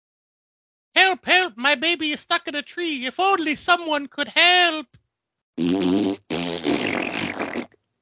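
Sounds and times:
speech: 1.0 - 5.0, 5.6 - 6.4
fart sound effects: 5.6 - 7.8.

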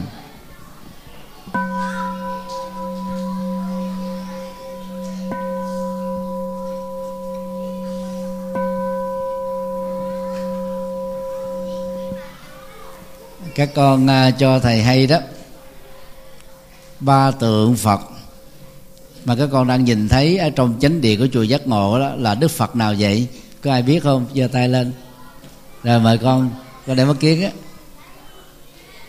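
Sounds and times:
faint children's voices: 0.0 - 21.5, 23.1 - 29.0
temple bell ringing at pagoda: 1.6 - 23.3
speech: 13.6 - 15.3, 17.0 - 18.1, 19.2 - 25.0, 25.8 - 27.6.

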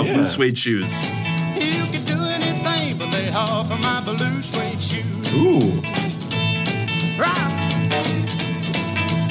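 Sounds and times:
person exclaiming: 0.0 - 0.4, 5.3 - 5.9
twangy guitar: 0.0 - 9.2
speech: 0.2 - 1.8, 3.4 - 6.0
person singing in a rockabilly song: 1.5 - 5.9
slapped upright bass clicking out a driving rhythm: 2.1 - 9.2.

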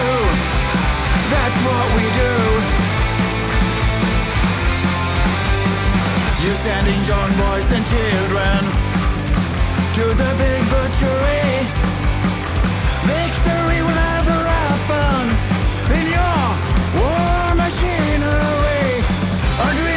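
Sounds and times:
male vocalist singing and half-shouting over the music: 0.0 - 2.9, 6.3 - 8.8, 9.9 - 11.8, 13.0 - 19.9
dense guitars in a recorded band song: 0.0 - 19.9
steady drums in a recorded band song: 0.0 - 19.9.

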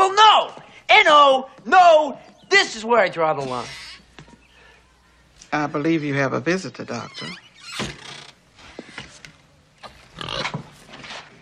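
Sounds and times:
speech: 1.3 - 3.8, 5.5 - 7.9
pig grunting and oinking: 9.8 - 10.8.

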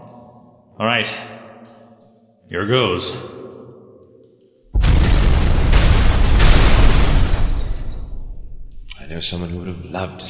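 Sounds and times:
speech: 0.8 - 1.3, 2.5 - 3.4, 9.2 - 10.2
moderate-sized explosives detonating to clear debris: 4.7 - 9.0.

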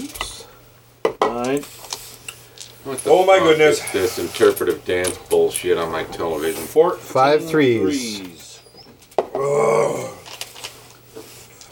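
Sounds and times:
speech: 1.5 - 1.8, 2.8 - 8.3
dog growling: 9.4 - 10.3.

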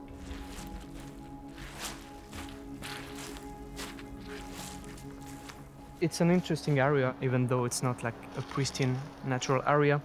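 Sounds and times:
footsteps squishing and splashing through soggy ground: 0.1 - 6.9
speech: 6.0 - 10.0.

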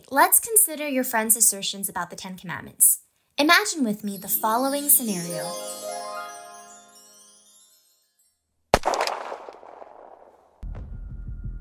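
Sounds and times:
speech: 0.1 - 6.0
chime-like musical tone: 4.1 - 8.5
gunshot with ringing tail: 8.8 - 10.4.

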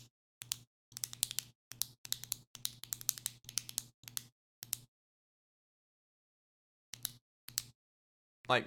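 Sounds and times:
pen clicking: 0.4 - 4.8
speech: 8.5 - 8.6.

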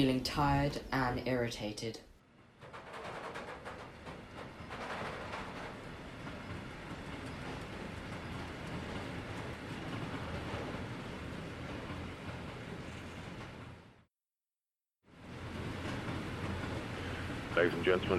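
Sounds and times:
speech: 0.0 - 2.1, 17.6 - 18.1
passenger train rumbling on rails at dusk: 2.3 - 14.1, 15.1 - 18.1
passenger train wheels rattling: 2.4 - 14.0, 15.2 - 18.1.

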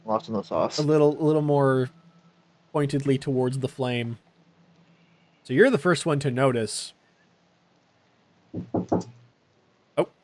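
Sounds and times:
speech: 0.1 - 2.0, 2.8 - 4.2, 5.4 - 7.0, 8.5 - 9.2, 10.0 - 10.2
knocking on a door: 8.5 - 9.2.

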